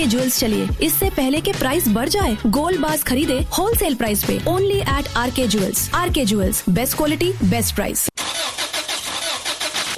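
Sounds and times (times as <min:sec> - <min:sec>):
speech: 0:00.0 - 0:08.1
car engine starter cranking and failing to start: 0:08.2 - 0:09.9.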